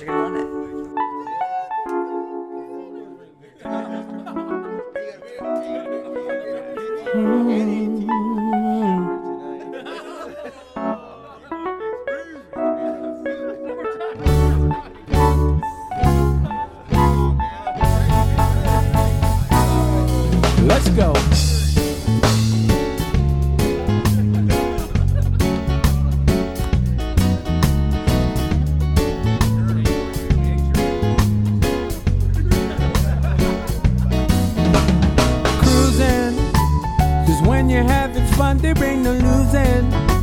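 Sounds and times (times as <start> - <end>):
laughter: 0.0 - 21.8, 22.4 - 26.7, 29.6 - 36.6
local band's full-band song with a driving beat on the radio: 5.4 - 9.3, 16.0 - 40.2.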